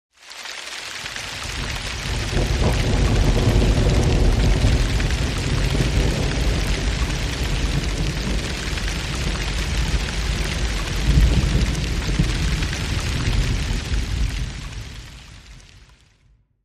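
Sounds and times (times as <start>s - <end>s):
tranquil rain: 0.1s - 16.3s.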